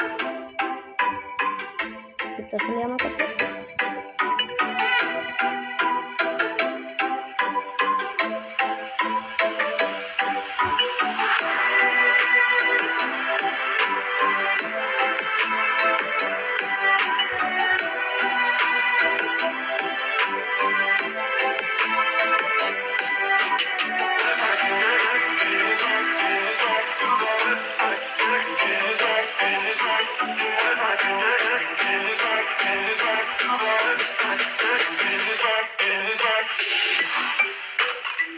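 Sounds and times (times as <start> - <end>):
recorded melodic song with a steady punchy beat: 0.0 - 38.3
speech: 2.4 - 3.5.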